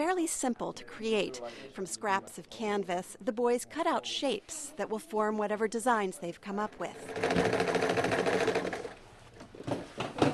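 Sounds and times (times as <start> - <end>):
speech: 0.0 - 8.2
sewing machine stitching painted canvas pieces onto larger canvases: 6.9 - 9.0.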